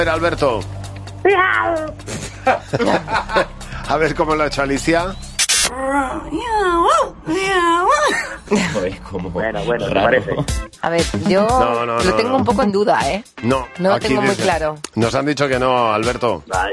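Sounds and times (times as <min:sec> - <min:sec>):
speech: 0:00.0 - 0:16.7
human voice imitating a cat trying to bark like a dog: 0:01.2 - 0:02.0
laughter: 0:02.1 - 0:03.9, 0:07.9 - 0:09.0, 0:09.8 - 0:10.6.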